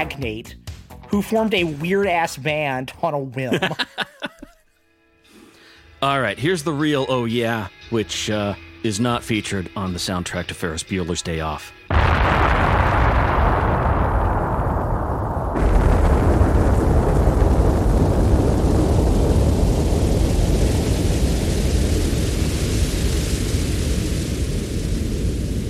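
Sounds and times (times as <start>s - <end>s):
speech: 0.0s - 4.2s, 6.0s - 12.5s
laughter: 3.4s - 4.7s
deep explosion sound effect booming and rumbling: 11.9s - 25.6s
dense crackling hiss: 11.9s - 25.6s.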